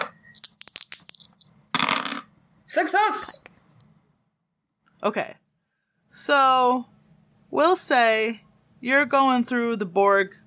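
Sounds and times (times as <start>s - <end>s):
two dice clattering across a hard surface: 0.0s - 2.3s
speech: 2.8s - 3.5s, 5.0s - 5.4s, 6.1s - 6.9s, 7.5s - 10.4s.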